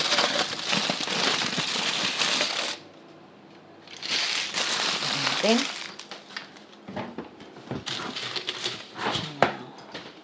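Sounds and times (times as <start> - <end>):
aluminium foil peeled off a dish crinkling: 0.0 - 2.8, 3.9 - 6.7, 7.9 - 8.9
speech: 5.4 - 5.7.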